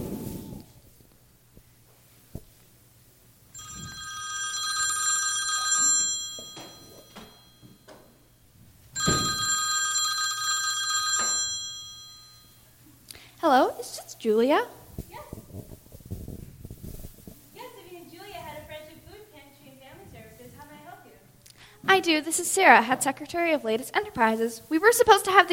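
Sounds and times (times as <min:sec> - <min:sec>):
telephone ringing after a number is dialled to a food pantry: 0:03.6 - 0:08.0, 0:09.0 - 0:12.7
speech: 0:14.2 - 0:14.8, 0:22.0 - 0:25.5.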